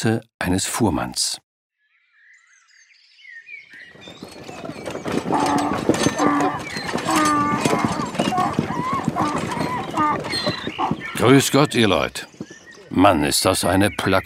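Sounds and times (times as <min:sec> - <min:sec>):
speech: 0:00.0 - 0:01.4, 0:10.1 - 0:14.2
tired donkey hooves clip-clopping on a historic trade route in poor weather: 0:03.8 - 0:13.8
voices murmuring: 0:04.0 - 0:14.2.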